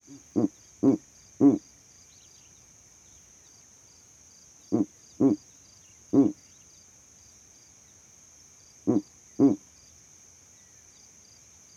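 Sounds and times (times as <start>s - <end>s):
owl hooting at night: 0.1s - 1.6s, 4.7s - 5.4s, 6.1s - 6.4s, 8.9s - 9.6s.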